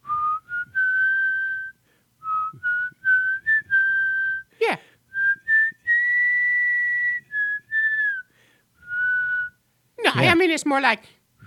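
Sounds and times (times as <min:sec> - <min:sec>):
whistling a simple tune: 0:00.0 - 0:04.5, 0:05.1 - 0:09.6
speech: 0:10.3 - 0:11.2.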